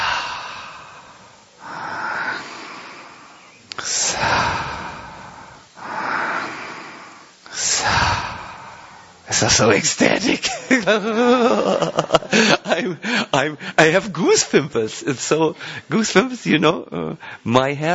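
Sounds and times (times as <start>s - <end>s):
slow deliberate breathing in and out: 0.0s - 9.3s, 12.2s - 13.8s, 15.6s - 15.9s, 17.2s - 17.5s
laughter: 9.3s - 14.5s
speech: 9.4s - 17.9s.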